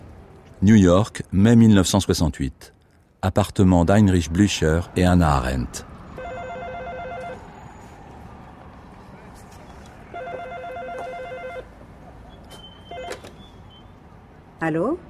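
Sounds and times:
speech: 0:00.6 - 0:05.9, 0:14.7 - 0:15.0
telephone ringing in a New York apartment in 1968: 0:06.2 - 0:07.4, 0:10.1 - 0:11.7, 0:12.9 - 0:13.2.

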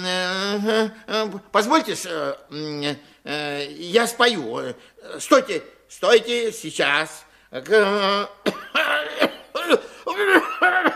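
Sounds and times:
speech: 0:00.0 - 0:10.9
man coughing and clearing his throat in a staged comic performance: 0:08.4 - 0:10.9.

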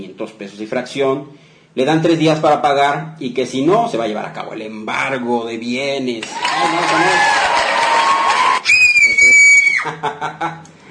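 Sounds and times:
speech: 0:00.0 - 0:07.4, 0:09.8 - 0:10.7
high piercing scream sound effect: 0:06.4 - 0:09.9.

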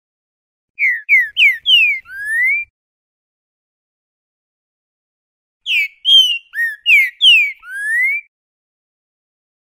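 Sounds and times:
green-winged saltator repeating song of rich whistled notes: 0:00.8 - 0:02.7, 0:05.6 - 0:08.3.

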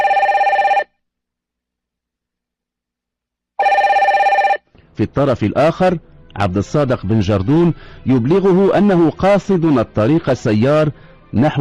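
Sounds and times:
telephone ringing with bright trilling: 0:00.0 - 0:00.9, 0:03.6 - 0:04.6
speech: 0:05.0 - 0:11.5.

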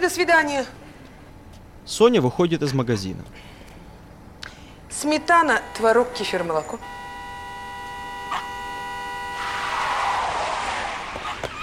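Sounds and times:
speech: 0:00.0 - 0:00.8, 0:01.9 - 0:03.5, 0:05.0 - 0:07.0
car braking hard on a street with tires skidding: 0:09.2 - 0:11.6.

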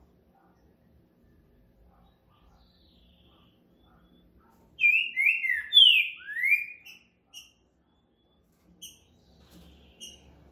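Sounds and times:
Green-winged saltator song of slurred falling whistles and short chips: 0:04.2 - 0:07.1.

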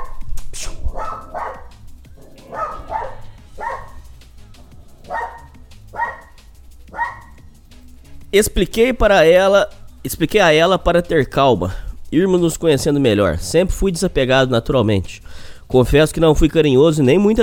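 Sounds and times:
dog barking: 0:00.0 - 0:04.1, 0:05.0 - 0:07.4
speech: 0:08.3 - 0:17.4.

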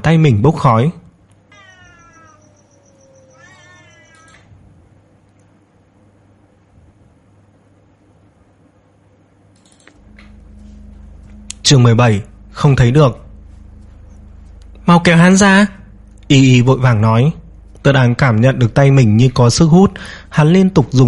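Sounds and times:
speech: 0:00.0 - 0:01.0, 0:11.7 - 0:13.2, 0:14.9 - 0:21.0
steady low hum: 0:00.0 - 0:21.0
cat howling in pain sound effect: 0:01.5 - 0:04.5.

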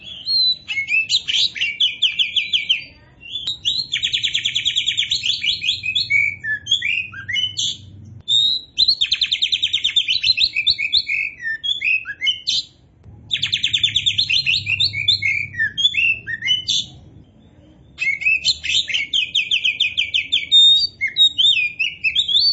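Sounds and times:
Oriental magpie-robin singing vigorously: 0:00.0 - 0:22.5.

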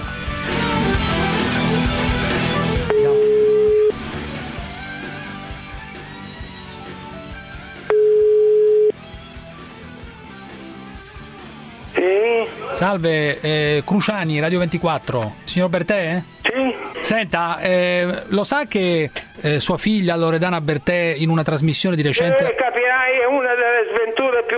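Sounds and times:
loud busy music: 0:00.0 - 0:22.6
ringback tone of an outgoing phone call: 0:02.9 - 0:04.1, 0:07.9 - 0:09.0
speech: 0:12.8 - 0:16.4, 0:17.0 - 0:24.5.

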